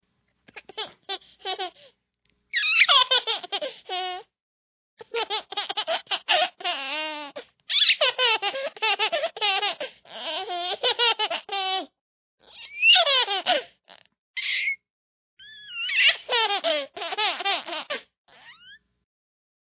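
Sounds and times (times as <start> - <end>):
happy baby: 0.5 - 1.9, 2.6 - 4.3, 5.0 - 14.7, 15.4 - 18.7.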